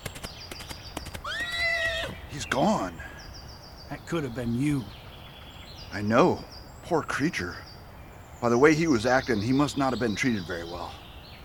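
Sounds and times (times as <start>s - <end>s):
horse hooves galloping: 0.0s - 2.2s
horse whinnying: 1.2s - 2.2s
speech: 2.4s - 3.1s, 3.9s - 5.0s, 5.9s - 7.7s, 8.4s - 11.0s.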